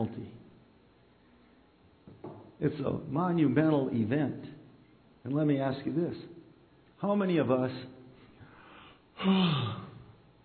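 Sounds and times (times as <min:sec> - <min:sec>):
speech: 0:00.0 - 0:00.4, 0:02.6 - 0:04.6, 0:05.2 - 0:06.4, 0:07.0 - 0:08.0, 0:09.2 - 0:09.8
person yawning: 0:09.2 - 0:10.2.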